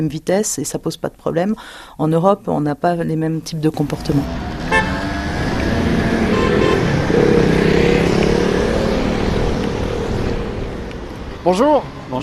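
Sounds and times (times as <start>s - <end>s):
speech: 0.0s - 4.5s, 11.4s - 12.2s
traffic jam engines and road noise on Paris roads near the Seine quays: 2.6s - 12.2s
car horn toot: 4.7s - 5.1s, 6.1s - 7.0s.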